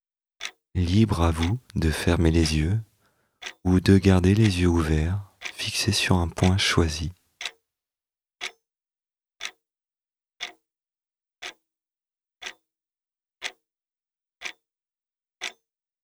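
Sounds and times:
clock ticking: 0.4s - 2.8s, 3.4s - 7.6s, 9.4s - 9.6s, 10.4s - 10.6s
speech: 0.8s - 7.2s.

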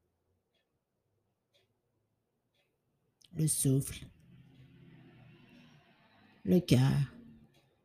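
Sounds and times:
speech: 3.3s - 4.2s, 6.5s - 7.2s
car passing in the street outside: 3.5s - 7.8s.

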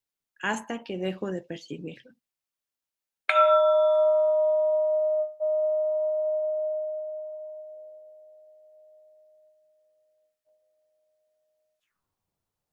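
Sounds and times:
speech: 0.4s - 2.2s
meditation bell ringing: 3.3s - 9.3s.

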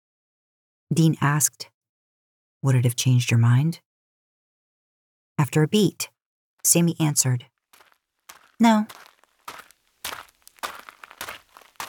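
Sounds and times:
speech: 0.9s - 1.7s, 2.6s - 3.9s, 5.4s - 7.5s, 8.6s - 9.1s
footsteps crunching through dry spiky leafy underbrush: 7.7s - 11.8s.

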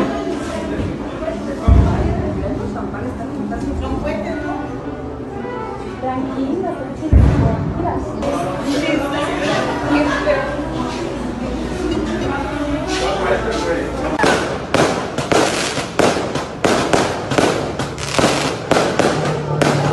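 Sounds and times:
murmur of diners in a café: 0.0s - 19.9s
sharp loud detonation cracks: 14.2s - 19.9s.

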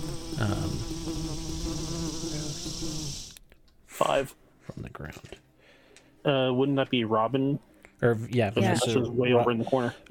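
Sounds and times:
swarm of insects buzzing: 0.0s - 3.4s
speech: 0.4s - 3.3s, 4.0s - 5.5s, 6.2s - 10.0s.

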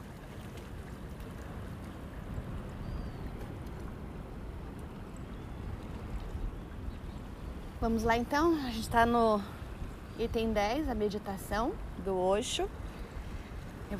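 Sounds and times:
sea waves washing: 0.0s - 13.9s
speech: 7.8s - 9.6s, 10.2s - 12.8s.

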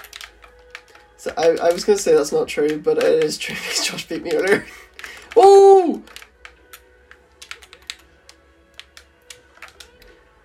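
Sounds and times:
speech: 1.2s - 6.2s
short loud voiced cry: 5.4s - 6.1s.

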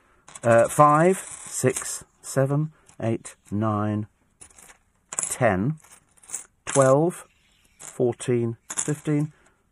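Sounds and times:
loose pocket-change coins clinking and jingling as they are handled and counted: 0.3s - 2.0s, 4.4s - 9.5s
person talking: 0.4s - 4.2s, 5.2s - 5.8s, 6.7s - 7.3s, 7.9s - 9.4s.

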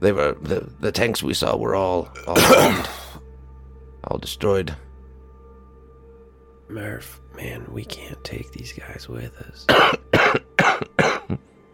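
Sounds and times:
speech: 0.0s - 3.0s, 4.1s - 4.8s, 6.7s - 10.1s, 10.9s - 11.5s
harsh wet coughs: 2.2s - 3.2s, 9.7s - 11.4s.

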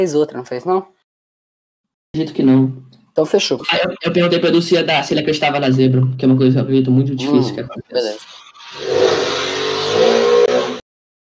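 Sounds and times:
speech: 0.0s - 1.0s, 2.1s - 8.9s
motorcycle engine revving past: 8.4s - 10.8s.

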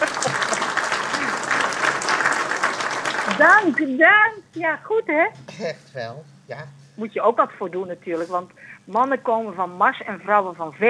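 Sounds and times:
laughter: 0.0s - 2.1s
sustained audience applause: 0.0s - 3.9s
speech: 3.4s - 10.8s.

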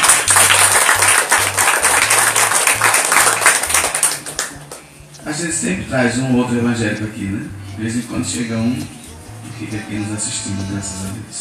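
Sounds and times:
crowd applauding: 0.0s - 4.9s
speech: 5.4s - 9.0s, 9.6s - 11.4s.

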